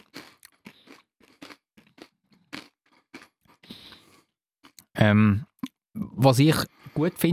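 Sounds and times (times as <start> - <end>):
crunching spicy potato chips topped with lime: 0.0 - 4.8
speech: 5.0 - 7.3.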